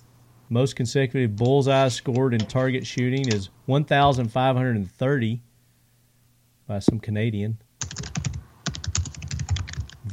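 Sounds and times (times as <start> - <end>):
speech: 0.5 - 5.5, 6.7 - 8.1
typing on a computer keyboard: 1.4 - 3.4, 7.8 - 10.0.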